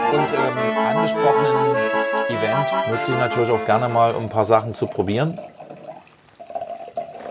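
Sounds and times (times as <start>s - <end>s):
speech: 0.2s - 5.6s
red wine being poured into a glass: 3.8s - 7.2s.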